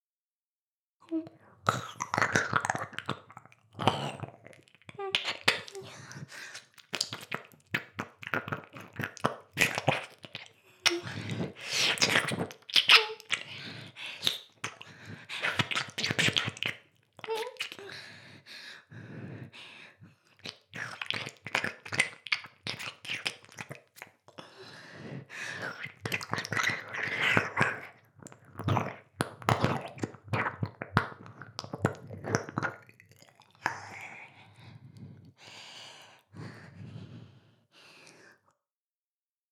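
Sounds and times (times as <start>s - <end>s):
ear licking sounds: 1.7s - 17.9s, 20.3s - 24.4s, 25.6s - 34.1s.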